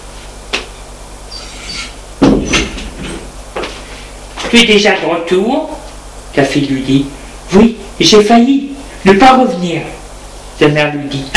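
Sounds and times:
knocking on a door: 2.2s - 2.8s
speech: 4.5s - 5.8s, 6.4s - 10.0s, 10.6s - 11.3s.

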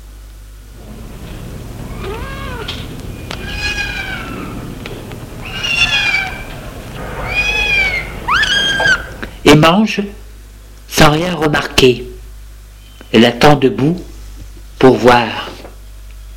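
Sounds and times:
low steady hum: 0.0s - 16.3s
cat meowing: 1.8s - 4.8s, 5.4s - 9.2s
speech: 9.6s - 10.2s, 11.0s - 12.1s, 13.1s - 14.1s, 14.8s - 15.5s.

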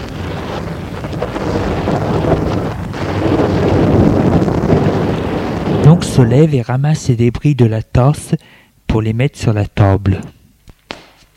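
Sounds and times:
thunder rumbling in a thunderstorm: 0.0s - 6.7s
speech: 6.2s - 10.4s.

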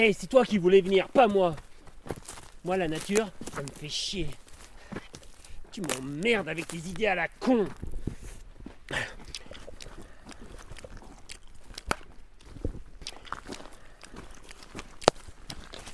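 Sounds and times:
speech: 0.0s - 1.6s, 2.6s - 4.4s, 5.8s - 7.9s, 8.9s - 9.2s
person chewing gum with wet smacks and clicks: 2.4s - 15.9s.

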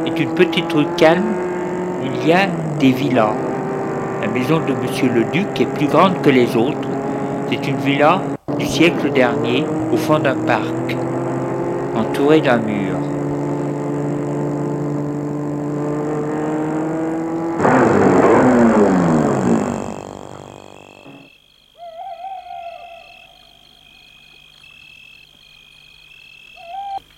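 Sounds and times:
car engine rumbling as the car drives up to a villa on a residential street: 0.0s - 21.3s
speech: 0.1s - 3.5s, 4.2s - 6.9s, 7.5s - 11.0s, 12.0s - 12.9s
faint chirping calls: 20.1s - 27.1s
owl hooting at night: 20.6s - 24.0s, 26.4s - 27.0s.

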